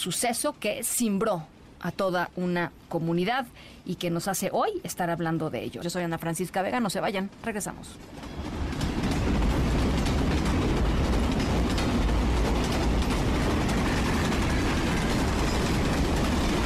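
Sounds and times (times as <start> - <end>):
speech: 0.0 - 8.6
heavy freight train rumbling along the rails: 6.7 - 16.6.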